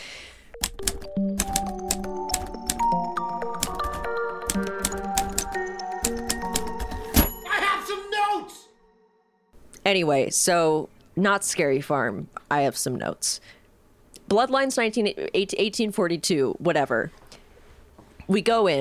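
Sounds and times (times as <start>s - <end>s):
steady melodic music bed: 0.5s - 9.4s
typewriter keystrokes clacking: 0.6s - 2.9s, 3.6s - 7.4s
speech: 9.9s - 13.6s, 14.3s - 17.2s, 18.3s - 18.7s.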